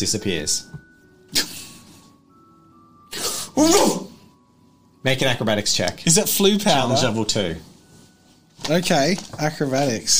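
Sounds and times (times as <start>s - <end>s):
speech: 0.0s - 1.5s, 3.6s - 4.0s, 5.0s - 7.7s, 8.6s - 10.1s
person sneezing: 3.1s - 4.2s.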